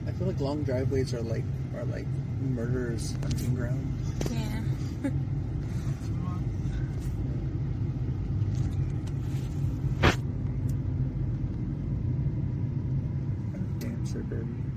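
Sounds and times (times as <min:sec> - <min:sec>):
car engine droning heard from inside the vehicle: 0:00.0 - 0:14.7
car tires rumbling on the road: 0:00.0 - 0:14.7
speech: 0:00.2 - 0:05.3.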